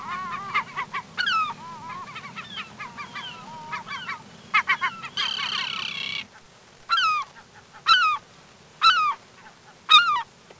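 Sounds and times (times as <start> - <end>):
bird giving harsh honks with a downward slur: 0.0 - 8.2.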